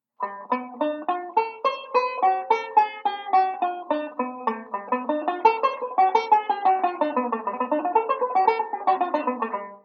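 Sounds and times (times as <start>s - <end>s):
banjo playing a ii V speed drill: 0.2s - 9.8s.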